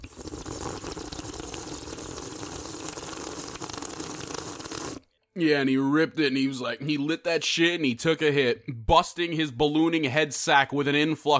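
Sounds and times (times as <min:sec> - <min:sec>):
water pouring into a gravity bong, gushing and bubbling: 0:00.0 - 0:05.0
speech: 0:05.4 - 0:11.3.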